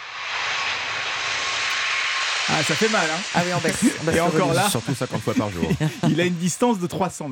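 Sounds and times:
jet airplane roaring at takeoff: 0.1 - 5.4
speech: 2.5 - 7.3
laughter: 3.4 - 6.6.

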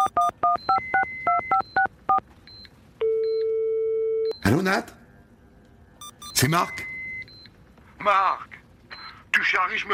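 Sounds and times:
touch-tone beeps of a telephone number being dialed: 0.0 - 4.4, 6.0 - 7.5
speech: 4.5 - 5.0, 6.4 - 6.9, 8.0 - 8.6, 9.4 - 9.9.

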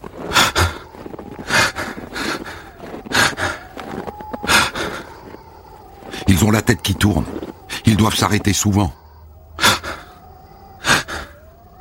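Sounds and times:
heavy panting breaths at high altitude: 0.2 - 6.6, 9.6 - 11.5
speech: 6.3 - 9.0.

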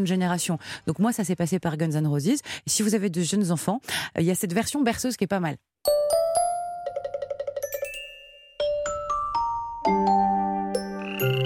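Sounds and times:
speech: 0.0 - 6.0
gentle lullaby of chime-like notes: 5.9 - 11.4
frogs croaking: 10.9 - 11.4.

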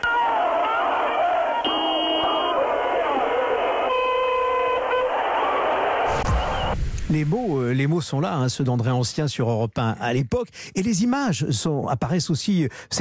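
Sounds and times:
jubilant crowd roaring and shouting at street celebration: 0.0 - 7.4
car horns honking in long sustained blasts: 1.5 - 2.7, 3.9 - 5.2
speech: 7.1 - 13.0.

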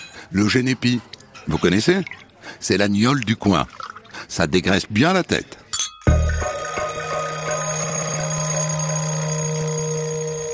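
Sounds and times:
speech: 0.3 - 5.6
alarm clock ringing with bright metallic rattling tone: 6.5 - 10.5.

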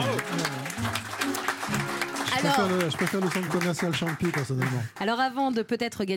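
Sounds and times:
voice or cheering: 0.0 - 4.8
audience applauding: 0.0 - 5.4
speech: 2.4 - 6.1.

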